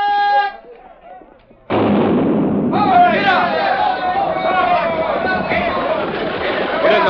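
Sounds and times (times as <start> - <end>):
crowd shouting: 0.0 - 1.4, 2.7 - 7.0
starting cannon firing: 1.7 - 7.0.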